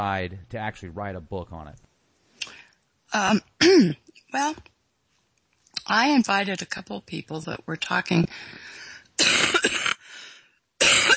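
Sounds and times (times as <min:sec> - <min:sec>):
speech: 0:00.0 - 0:01.9, 0:03.1 - 0:04.7, 0:05.9 - 0:09.5
person coughing from allergies: 0:03.2 - 0:04.0, 0:09.2 - 0:10.1, 0:10.8 - 0:11.1.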